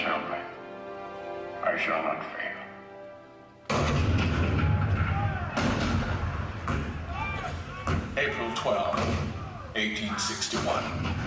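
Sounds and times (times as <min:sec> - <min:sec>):
speech: 0:01.7 - 0:02.6, 0:08.2 - 0:09.2, 0:09.8 - 0:11.2
heavy cannon fire booming: 0:03.7 - 0:09.7
rolling detonations with rumbling echoes: 0:03.7 - 0:11.2.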